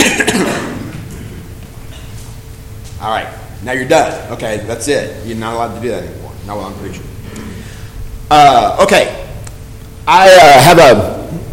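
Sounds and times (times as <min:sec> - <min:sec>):
loud cough with a rough throat-clearing rasp: 0:00.0 - 0:02.2
speech: 0:03.1 - 0:07.1, 0:08.3 - 0:09.2, 0:10.1 - 0:11.5.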